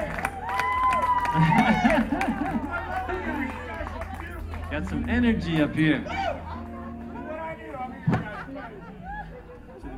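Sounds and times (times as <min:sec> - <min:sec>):
scattered claps: 0:00.0 - 0:06.0
lively crowd cheering and shouting: 0:00.0 - 0:09.9
laughter: 0:01.0 - 0:04.7, 0:06.0 - 0:09.9
speech: 0:01.4 - 0:02.7, 0:04.7 - 0:06.4.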